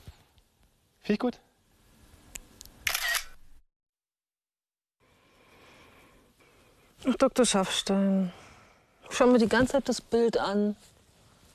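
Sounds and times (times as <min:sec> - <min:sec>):
speech: 0:01.1 - 0:01.5, 0:07.0 - 0:08.4, 0:09.1 - 0:10.9
camera shutter clicks: 0:02.8 - 0:03.4.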